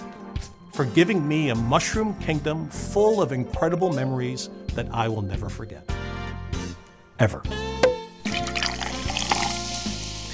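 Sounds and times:
speech: 0:00.8 - 0:06.0, 0:07.2 - 0:07.7
liquid pouring into a glass: 0:07.8 - 0:09.8.

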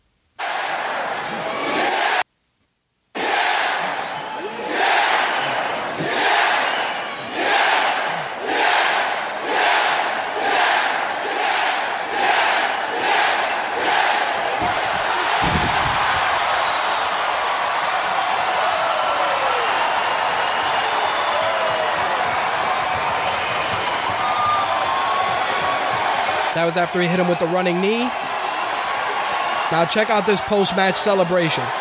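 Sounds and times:
huge wrestling arena crowd roaring and cheering: 0:00.4 - 0:02.2, 0:03.2 - 0:31.7
wrestling arena crowd chanting rhythmically: 0:00.4 - 0:02.2, 0:03.2 - 0:16.8
speech: 0:26.6 - 0:28.3, 0:29.7 - 0:31.7.

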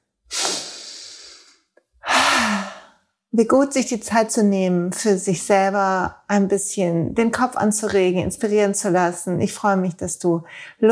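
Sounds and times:
deep breath in and out: 0:00.3 - 0:03.1
speech: 0:03.4 - 0:10.9.

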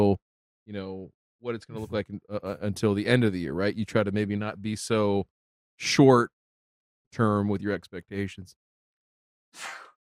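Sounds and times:
speech: 0:00.0 - 0:06.4, 0:07.1 - 0:08.6, 0:09.5 - 0:09.8
sneeze: 0:09.6 - 0:10.0.

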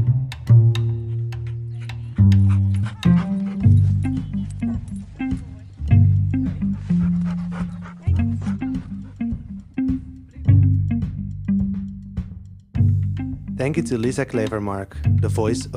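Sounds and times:
low tonal backing: 0:00.0 - 0:15.7
actor's voice imitating dog barks, whines and panting: 0:01.2 - 0:03.8
speech: 0:13.6 - 0:15.7.

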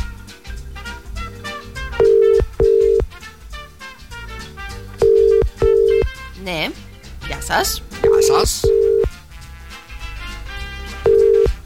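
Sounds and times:
music: 0:00.0 - 0:11.6
telephone ringback tone: 0:02.0 - 0:03.1, 0:05.0 - 0:06.1, 0:08.0 - 0:09.1, 0:11.1 - 0:11.6
speech: 0:07.5 - 0:08.8.

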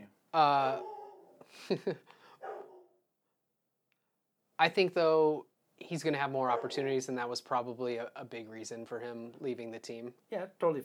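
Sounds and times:
speech: 0:00.4 - 0:00.9, 0:01.5 - 0:02.2, 0:04.6 - 0:10.8
dogs barking: 0:00.7 - 0:01.4, 0:02.4 - 0:02.9, 0:06.5 - 0:07.0
dogs yipping and whining: 0:00.8 - 0:01.4, 0:02.4 - 0:02.8.

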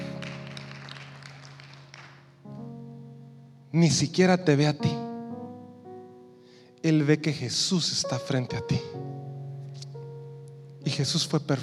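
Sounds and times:
audience clapping: 0:00.0 - 0:02.4
sustained keyboard chord: 0:00.0 - 0:11.6
speech: 0:03.7 - 0:05.0, 0:07.1 - 0:09.2, 0:11.0 - 0:11.6.

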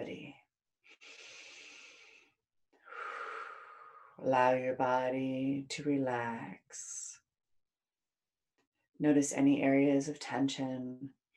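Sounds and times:
slow deep breathing from a person lying down during a guided relaxation exercise: 0:00.9 - 0:04.2
speech: 0:04.2 - 0:07.0, 0:09.0 - 0:11.2.

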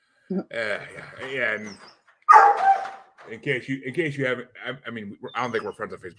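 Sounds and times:
speech: 0:00.3 - 0:06.1
laughter: 0:00.6 - 0:01.8, 0:03.3 - 0:06.1
puppy yowling: 0:01.2 - 0:03.0
puppy barking: 0:02.3 - 0:03.0.

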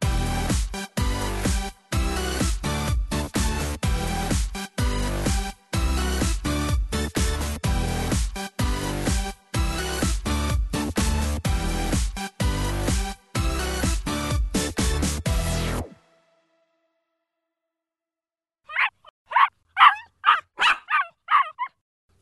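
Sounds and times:
music: 0:00.0 - 0:17.4
puppy yipping and whimpering: 0:18.7 - 0:22.2.

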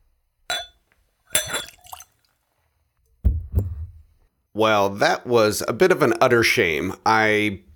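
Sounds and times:
bright clink of bottle on Glencairn glass: 0:00.5 - 0:02.1
heavier splattering pour spilling whiskey: 0:00.5 - 0:02.3
whiskey poured from a bottle into a Glencairn nosing glass: 0:01.3 - 0:02.2
speech: 0:04.6 - 0:07.7.

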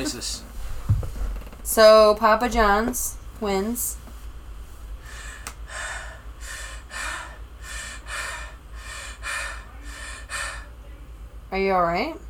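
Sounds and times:
speech: 0:00.0 - 0:00.5, 0:01.7 - 0:04.0, 0:11.5 - 0:12.2
low hum: 0:00.0 - 0:12.2
person breathing heavily into a phone microphone: 0:04.6 - 0:10.8.

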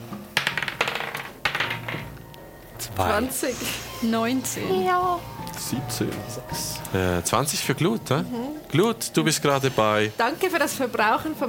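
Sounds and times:
twenty-sided dice clattering across a hard tabletop: 0:00.4 - 0:02.1
speech: 0:02.9 - 0:11.4.

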